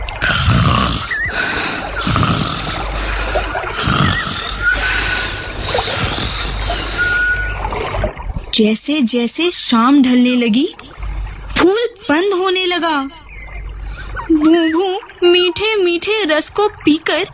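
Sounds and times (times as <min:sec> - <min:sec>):
loud rumbling snoring with a thin whistly tone: 0:00.0 - 0:07.7
speech: 0:08.6 - 0:10.9, 0:11.6 - 0:13.2, 0:14.3 - 0:17.3.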